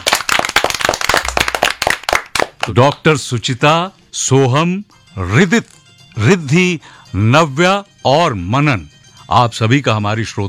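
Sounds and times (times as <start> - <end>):
applause: 0.0 - 3.0
speech: 2.6 - 10.4.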